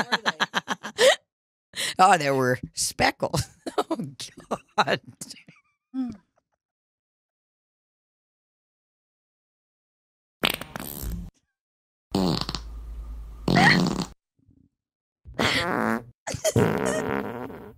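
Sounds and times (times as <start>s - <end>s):
speech: 0.0s - 0.3s, 2.0s - 5.4s, 15.6s - 17.1s
laughter: 0.0s - 1.2s
fart sound effects: 10.4s - 11.3s, 12.1s - 12.7s, 13.4s - 14.2s, 15.4s - 17.7s.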